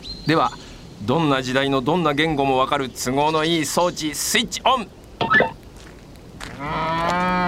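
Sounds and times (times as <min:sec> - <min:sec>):
speech: 0:00.2 - 0:05.3
cow mooing: 0:06.6 - 0:07.4.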